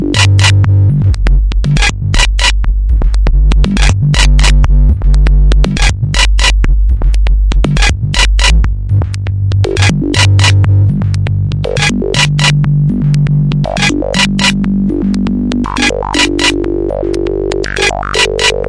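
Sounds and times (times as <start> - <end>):
acid synth and electronic melodic loops: 0.0 - 18.6.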